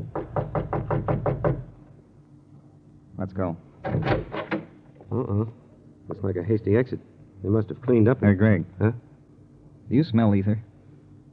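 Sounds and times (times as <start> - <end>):
knocking on a private door: 0.0 - 1.8, 3.8 - 4.8
speech: 3.3 - 4.4, 5.2 - 9.1, 9.9 - 10.7.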